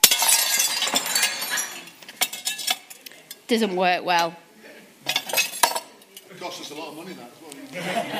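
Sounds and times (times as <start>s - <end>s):
ceramic pot fragments clinking and tinkling: 0.0s - 3.0s
ceramic pot shattering after being tapped: 0.0s - 3.0s, 5.1s - 6.0s
speech: 3.5s - 4.4s, 6.4s - 8.1s
laughter: 7.7s - 8.1s.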